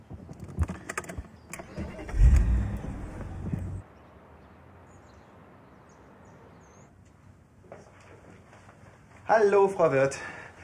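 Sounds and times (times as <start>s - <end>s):
sharp clicks and rattles: 0.2s - 1.8s
car engine driving off: 1.6s - 3.8s
speech: 9.3s - 10.4s.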